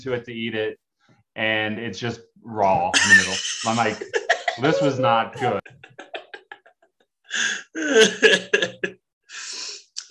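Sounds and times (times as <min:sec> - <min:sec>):
speech: 0:00.0 - 0:00.8, 0:01.4 - 0:06.2, 0:07.3 - 0:10.0
laughter: 0:03.0 - 0:08.9
sniffs: 0:09.3 - 0:10.0.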